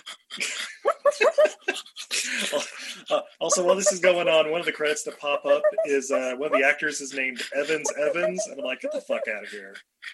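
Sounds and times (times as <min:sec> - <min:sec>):
laughter: 0:00.4 - 0:09.7
person imitating dogs barking: 0:03.5 - 0:04.0, 0:05.4 - 0:06.8, 0:07.6 - 0:09.6
speech: 0:03.5 - 0:09.9.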